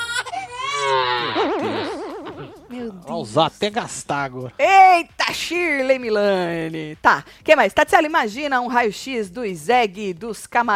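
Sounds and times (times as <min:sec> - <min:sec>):
exaggerated crying wail sound effect: 0:00.0 - 0:02.7
laughter: 0:00.6 - 0:02.7
speech: 0:03.2 - 0:10.7.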